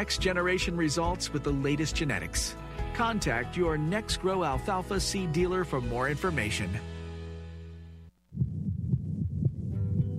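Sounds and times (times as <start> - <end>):
speech: 0.0 - 7.0
rapid fetal heartbeat on a Doppler monitor: 8.3 - 10.1.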